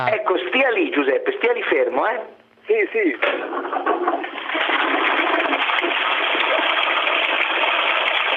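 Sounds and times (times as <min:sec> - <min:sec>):
speech: 0:00.0 - 0:06.2
toilet flushing with a loud steady rush of water: 0:03.2 - 0:08.3.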